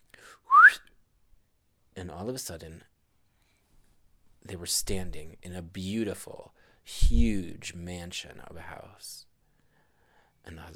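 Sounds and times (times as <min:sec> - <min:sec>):
short whistle sliding upward in pitch: 0:00.5 - 0:00.8
speech: 0:02.0 - 0:02.9, 0:04.4 - 0:09.3, 0:10.4 - 0:10.7.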